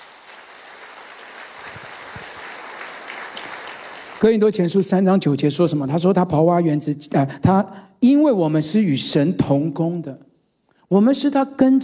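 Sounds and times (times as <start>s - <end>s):
large crowd clapping: 0.0s - 4.3s
speech: 4.2s - 10.3s, 10.9s - 11.8s.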